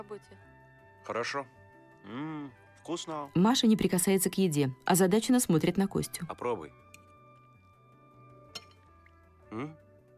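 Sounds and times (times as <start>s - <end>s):
speech: 0.0s - 6.8s, 9.5s - 9.8s
fork clinking against a plate of spaghetti with shrimp: 8.5s - 8.8s
person murmuring: 9.5s - 9.8s.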